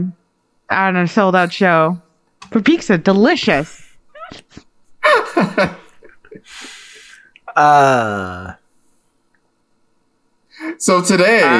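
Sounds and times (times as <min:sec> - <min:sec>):
speech: 0:00.0 - 0:04.6, 0:05.4 - 0:06.8, 0:07.6 - 0:08.6, 0:10.6 - 0:11.5
laughter: 0:04.2 - 0:07.1, 0:11.4 - 0:11.5
breathing into microphone: 0:06.4 - 0:07.4
loud voiced sigh: 0:06.4 - 0:08.6.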